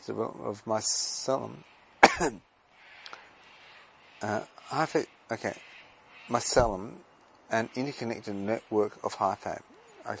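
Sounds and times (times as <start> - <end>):
speech: 0.0 - 2.5, 4.2 - 5.7, 6.3 - 10.1
faint hiss: 0.0 - 10.1
person coughing: 2.0 - 2.4.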